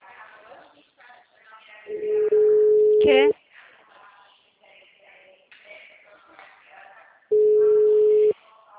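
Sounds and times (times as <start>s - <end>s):
phone call ringing tone: 1.9s - 3.3s, 7.3s - 8.3s
sound: 1.9s - 4.3s, 7.3s - 8.7s
speech: 3.0s - 3.3s.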